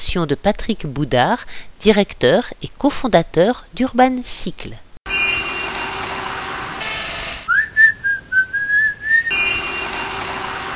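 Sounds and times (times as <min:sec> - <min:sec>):
speech: 0:00.1 - 0:04.8
steady broadband street noise: 0:05.1 - 0:10.7
whistled tune: 0:07.5 - 0:10.0.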